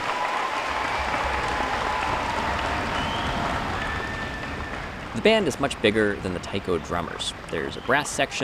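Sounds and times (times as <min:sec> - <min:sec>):
faint cheering: 0:00.0 - 0:08.4
large crowd of students applauding loudly: 0:00.0 - 0:08.4
speech: 0:05.2 - 0:08.4.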